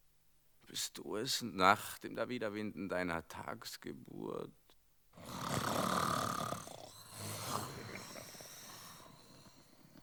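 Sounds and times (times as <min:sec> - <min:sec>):
speech: 0:00.7 - 0:04.6
deep rattling snores: 0:05.2 - 0:10.0.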